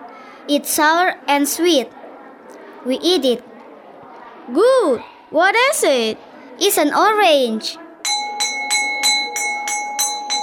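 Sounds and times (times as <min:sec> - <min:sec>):
speech: 0:00.5 - 0:02.0, 0:02.8 - 0:03.5, 0:04.5 - 0:07.8
electric school bell ringing: 0:08.0 - 0:10.4.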